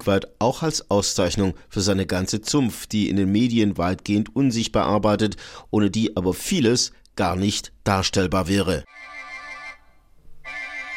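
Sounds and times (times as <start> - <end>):
speech: 0.0 - 9.1
telephone ringing with bright electronic trills: 8.9 - 10.9.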